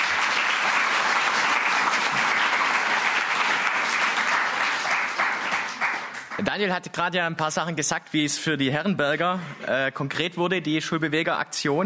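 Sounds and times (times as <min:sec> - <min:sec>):
audience applause, many hands clapping at range: 0:00.0 - 0:06.6
speech: 0:06.4 - 0:11.8.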